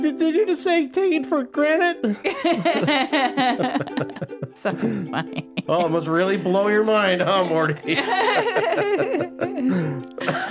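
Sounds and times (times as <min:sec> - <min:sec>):
speech: 0:00.0 - 0:10.4
laughter: 0:02.2 - 0:10.4
person coughing in a fit: 0:09.5 - 0:10.4.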